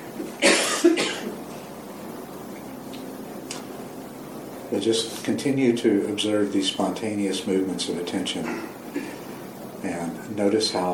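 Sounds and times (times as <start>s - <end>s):
person coughing harshly: 0.4s - 1.3s, 8.4s - 9.2s
speech: 4.7s - 8.8s, 10.4s - 10.9s.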